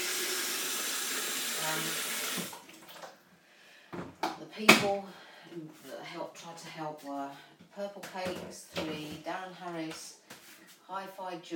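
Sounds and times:
tap running water into a kettle: 0.0 - 3.2
speech: 1.7 - 2.5, 4.6 - 10.2, 10.9 - 11.5.

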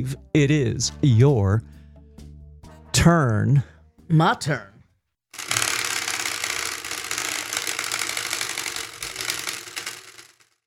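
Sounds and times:
speech: 0.0 - 1.8, 3.0 - 4.7
spinning prize wheel clicking: 5.4 - 10.6.

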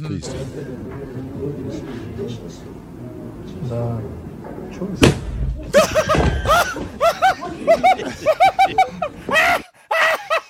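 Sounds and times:
speech: 0.0 - 8.5
murmur of talk: 0.0 - 9.6
chair exploding in a played video: 5.0 - 7.0
people laughing: 5.6 - 10.4.

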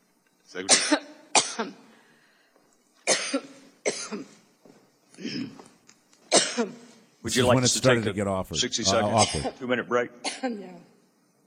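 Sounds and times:
speech: 0.5 - 1.9, 6.6 - 10.9
person having a harsh coughing fit: 0.7 - 1.8, 3.0 - 4.4, 5.2 - 5.6, 6.3 - 6.9, 9.0 - 9.6, 10.2 - 10.7.

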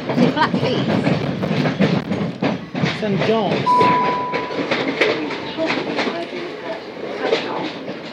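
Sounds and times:
passenger train rumbling along the rails: 0.0 - 8.1
speech: 0.1 - 1.2, 3.0 - 5.1
voices murmuring: 2.5 - 8.1.

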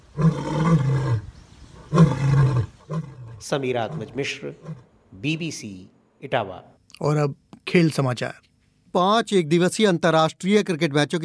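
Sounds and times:
lion roaring: 0.1 - 4.9
speech: 3.4 - 11.2.

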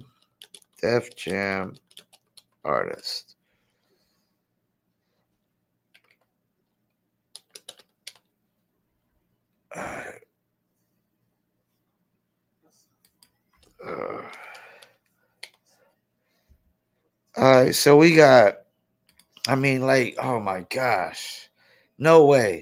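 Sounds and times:
computer keyboard typing clicks: 0.0 - 2.6, 5.9 - 6.3, 7.3 - 8.3, 13.0 - 15.6
speech: 0.8 - 1.8, 2.6 - 3.4, 17.4 - 18.6, 19.4 - 22.6
loud throat clearing or cough: 9.7 - 10.3.

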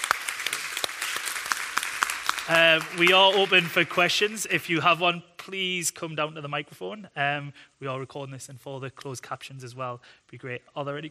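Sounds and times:
scattered audience applause for panel guests: 0.0 - 4.1
speech: 2.5 - 11.1.

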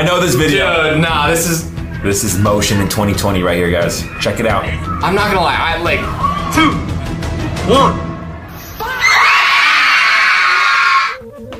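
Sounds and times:
speech: 0.0 - 6.9, 7.6 - 8.1
crowd screaming wildly: 3.9 - 7.2, 8.5 - 11.2.

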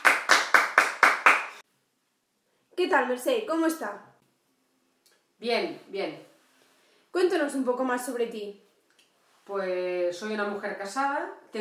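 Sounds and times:
applause welcoming a female guest: 0.0 - 1.6
speech: 2.8 - 4.1, 5.4 - 6.3, 7.1 - 8.6, 9.5 - 11.6.

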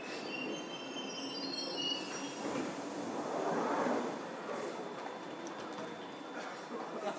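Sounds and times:
high train wheel squeals: 0.0 - 2.7
train arriving at a station rumbling: 0.0 - 7.0.

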